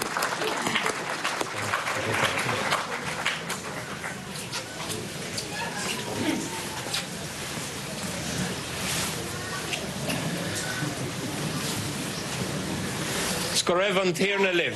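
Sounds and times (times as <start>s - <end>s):
audience at a Eucharist applauding a choir: 0.0s - 4.8s
faint murmur of voices: 0.0s - 14.7s
speech: 13.7s - 14.7s.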